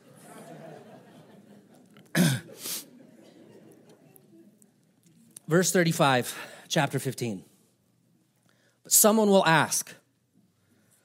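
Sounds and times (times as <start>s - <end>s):
laughter: 0.0s - 4.8s
person coughing sharply: 2.1s - 2.9s
speech: 5.5s - 7.5s, 8.9s - 10.0s.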